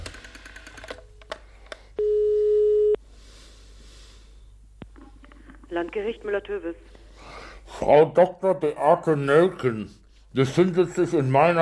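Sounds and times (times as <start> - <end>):
telephone line short steady beep during a phone call: 2.0 - 3.0
speech: 5.8 - 7.0, 7.8 - 11.6.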